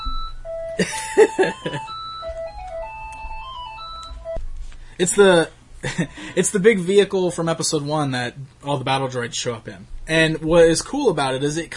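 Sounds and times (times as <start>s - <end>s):
phone ringtone with a stepped electronic melody: 0.0s - 4.4s
speech: 0.8s - 2.0s, 5.0s - 11.7s.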